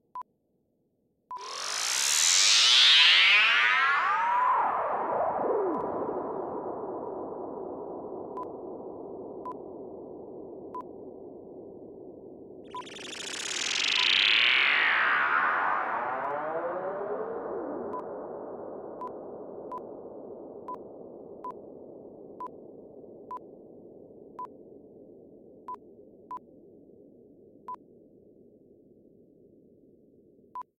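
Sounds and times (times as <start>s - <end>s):
zapper whoosh: 1.4s - 9.6s, 12.6s - 20.4s.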